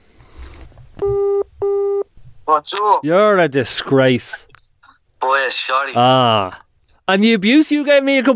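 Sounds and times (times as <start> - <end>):
phone line ringing tone of paired electronic buzzes: 1.0 - 2.1
speech: 2.6 - 4.5, 5.2 - 8.3.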